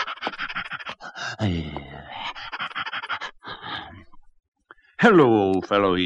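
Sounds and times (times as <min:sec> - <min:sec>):
old hound panting heavily lying in a road out of breath from running: 0:00.0 - 0:01.4, 0:02.1 - 0:04.1
old hound voiced wheezy gasp: 0:00.0 - 0:04.2
speech: 0:01.4 - 0:01.9, 0:05.0 - 0:06.0.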